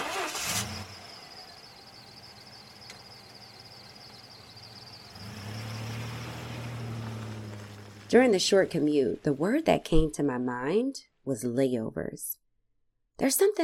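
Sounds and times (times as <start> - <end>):
car engine starting with a short rough burst: 0.0 - 9.4
speech: 8.1 - 12.4, 13.2 - 13.6.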